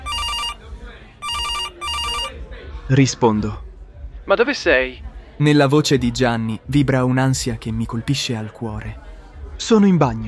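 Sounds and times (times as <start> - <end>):
mobile phone ringing with bright harmonic electronic ring tone: 0.0 - 0.6, 1.2 - 2.3
speech: 2.9 - 3.6, 4.3 - 10.2.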